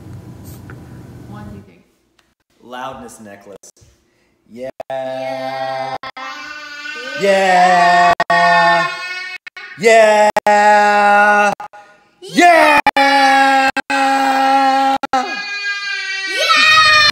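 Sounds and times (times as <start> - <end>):
speech: 2.6 - 3.8, 4.5 - 6.1, 7.0 - 8.1, 9.8 - 13.6
person yelling in a high strained voice: 7.0 - 17.0.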